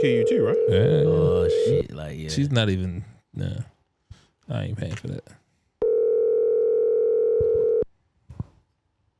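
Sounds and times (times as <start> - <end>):
phone ringback tone while placing a call: 0.0 - 1.8, 5.8 - 7.8
speech: 0.0 - 3.8, 4.5 - 5.4.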